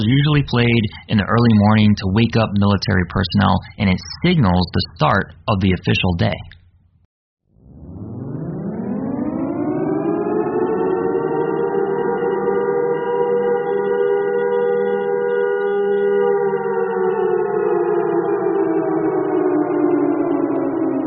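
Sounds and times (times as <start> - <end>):
speech: 0.0 - 6.5
civil defense air raid siren wailing: 7.6 - 21.0.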